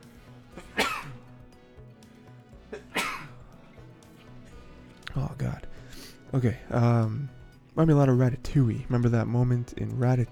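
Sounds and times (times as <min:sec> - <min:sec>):
person sneezing: 0:00.6 - 0:01.3, 0:02.7 - 0:03.4
speech: 0:05.2 - 0:10.3.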